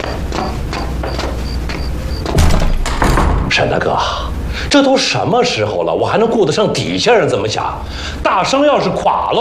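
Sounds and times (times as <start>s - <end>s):
steady noise: 0.0s - 9.3s
door shutting with a deep heavy thud: 2.2s - 3.6s
speech: 3.6s - 9.3s.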